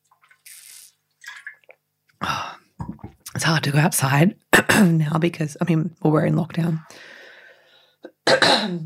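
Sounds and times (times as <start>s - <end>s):
speech: 3.4s - 7.0s, 8.7s - 8.8s
person coughing to clear their throat: 8.2s - 8.8s.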